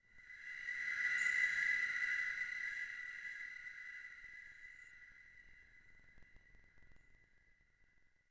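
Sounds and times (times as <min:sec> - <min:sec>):
ambient choir pad: 0:00.2 - 0:06.3.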